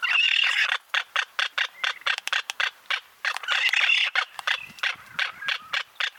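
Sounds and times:
magnificent frigatebird colony squawking: 0:00.0 - 0:06.1
magnificent frigatebird rapid bill snapping: 0:02.1 - 0:05.0.

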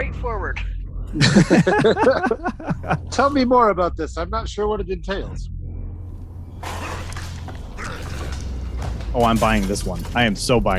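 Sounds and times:
low steady rumble: 0:00.0 - 0:10.7
speech: 0:00.2 - 0:05.6, 0:09.2 - 0:10.7
laughter: 0:01.2 - 0:03.4
glass and debris crunching: 0:06.5 - 0:10.7
window smashed in by a zombie: 0:06.6 - 0:10.2.

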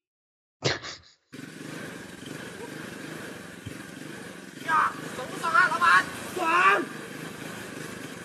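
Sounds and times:
motorcycle engine running: 0:01.3 - 0:08.2
voices: 0:02.2 - 0:08.2.

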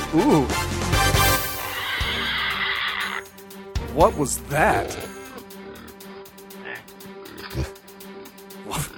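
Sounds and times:
speech: 0:00.1 - 0:00.8, 0:04.0 - 0:05.2
pig squeals: 0:01.3 - 0:03.3, 0:04.6 - 0:06.0
group of pigs grunting and snorting: 0:01.4 - 0:03.3, 0:04.5 - 0:07.9, 0:08.6 - 0:08.9.

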